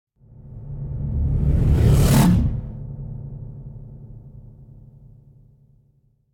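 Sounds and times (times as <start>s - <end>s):
reversed heavy air rip whoosh: 0.9s - 2.8s.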